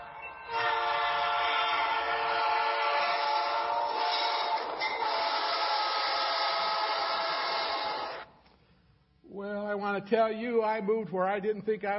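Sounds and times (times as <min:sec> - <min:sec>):
train horn blast: 0:00.5 - 0:07.7
speech: 0:10.0 - 0:11.9.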